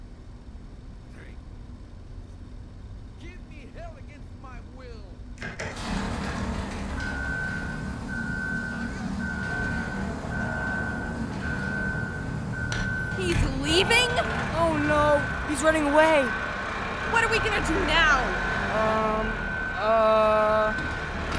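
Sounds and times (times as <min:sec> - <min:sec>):
Tucker snowcat engine starting and moving off: 0:03.0 - 0:21.3
repeated high beeping tone: 0:07.0 - 0:21.3
speech: 0:13.8 - 0:16.4, 0:17.1 - 0:20.9.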